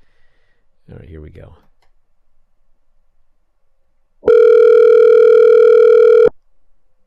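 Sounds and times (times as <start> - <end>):
speech: 0.9 - 1.7
electronic telephone ringback tone on an outgoing call: 4.2 - 6.3.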